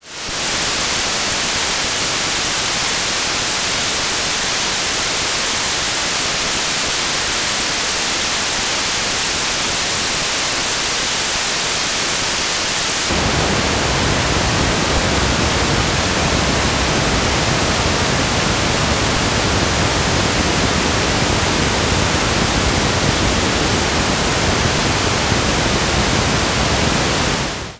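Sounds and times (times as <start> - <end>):
pink noise: 0.0 - 27.7
white noise: 0.0 - 27.7.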